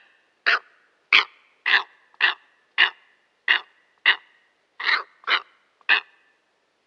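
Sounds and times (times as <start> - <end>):
steppe eagle giving harsh hoarse barking calls: 0.5 - 4.2, 4.8 - 6.2.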